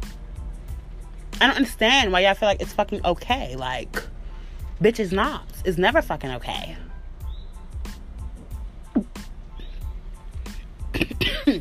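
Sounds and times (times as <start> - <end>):
speech: 1.4 - 4.1, 4.8 - 6.9
cough: 10.9 - 11.5
throat clearing: 10.9 - 11.5.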